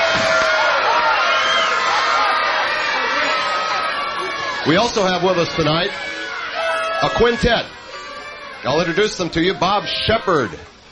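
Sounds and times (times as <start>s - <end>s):
jazz concert audience cheering and whooping: 0.0s - 10.6s
audience whistles: 1.3s - 2.8s
speech: 4.7s - 6.2s, 7.0s - 7.8s, 8.6s - 10.7s.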